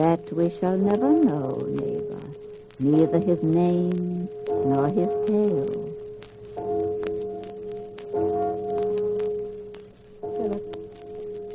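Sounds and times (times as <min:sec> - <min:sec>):
speech: 0:00.0 - 0:05.9
faint crackling hiss: 0:00.0 - 0:11.5
deep church bell tolling slowly: 0:04.3 - 0:11.5.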